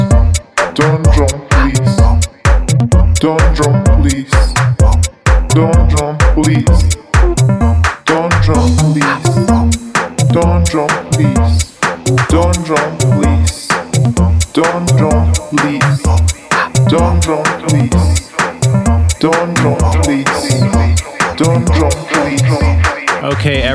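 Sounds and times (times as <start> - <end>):
electronic dance track with four-on-the-floor kick, punchy bass and hi-hats: 0.0 - 23.7.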